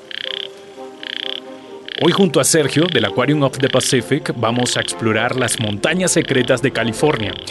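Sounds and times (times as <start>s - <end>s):
yellow-legged frog croaking: 0.0s - 7.4s
speech: 2.0s - 7.4s.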